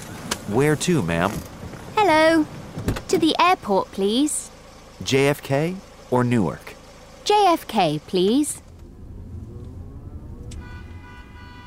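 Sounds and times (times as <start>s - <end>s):
busy morning street traffic in New York: 0.0s - 11.6s
vehicles passing: 0.0s - 11.6s
speech: 0.5s - 6.7s, 7.3s - 8.6s
sustained tonal horn or siren-like sound: 9.1s - 11.6s.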